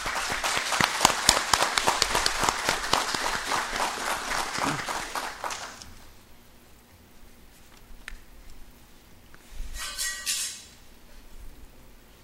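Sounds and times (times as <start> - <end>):
audience applause at a city council tribute ceremony: 0.0 - 6.0.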